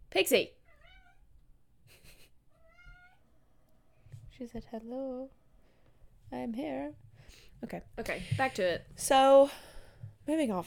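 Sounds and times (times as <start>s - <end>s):
speech: 0.3s - 0.6s, 4.4s - 5.4s, 6.3s - 9.7s, 10.3s - 10.6s
cat meowing: 0.6s - 1.2s, 2.5s - 3.3s.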